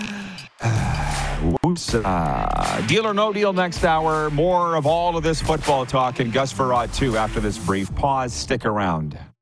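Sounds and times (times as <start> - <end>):
breathing in and out: 0.0 - 1.4
speech: 1.4 - 9.3.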